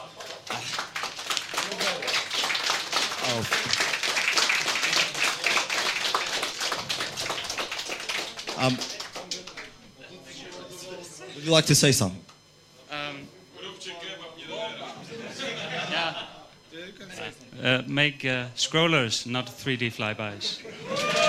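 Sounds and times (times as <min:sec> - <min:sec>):
crowd applauding at a competition prize-giving: 0:00.0 - 0:09.8, 0:20.7 - 0:21.2
laughter: 0:03.1 - 0:06.4, 0:14.8 - 0:16.6, 0:20.4 - 0:21.2
speech: 0:03.4 - 0:03.9, 0:08.6 - 0:09.0, 0:11.4 - 0:12.3, 0:17.7 - 0:20.7
faint voices and cheers: 0:20.8 - 0:21.2.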